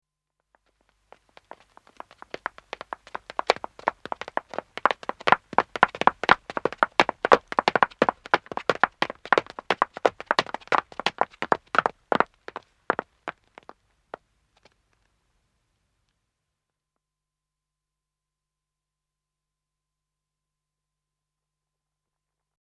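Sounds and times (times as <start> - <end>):
man and woman running footsteps on wood approaching and stopping: 1.1 - 13.8.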